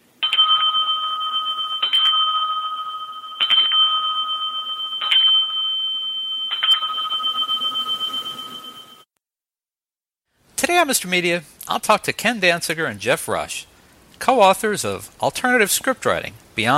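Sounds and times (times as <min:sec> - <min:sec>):
small bell dinging: 0:00.0 - 0:09.1
speech: 0:10.8 - 0:16.7.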